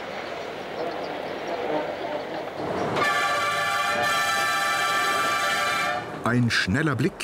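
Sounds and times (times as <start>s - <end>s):
electric mountain railway train grinding up a steep gradient on Mont Blanc massif: 0.0s - 6.5s
mountain railway train horn: 1.6s - 6.2s
speech: 6.3s - 7.2s.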